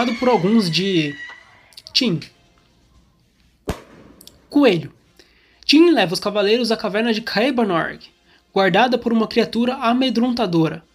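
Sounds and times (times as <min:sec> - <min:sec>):
speech: 0:00.0 - 0:01.2, 0:02.0 - 0:02.4, 0:04.5 - 0:05.0, 0:05.7 - 0:10.9
firework bang: 0:03.7 - 0:04.3.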